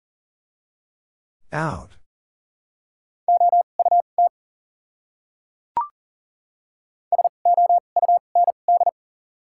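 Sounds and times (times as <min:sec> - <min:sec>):
speech: 0:01.5 - 0:02.0
Morse code beeps at 40 words per minute in a clear steady tone: 0:03.3 - 0:04.3, 0:07.1 - 0:08.9.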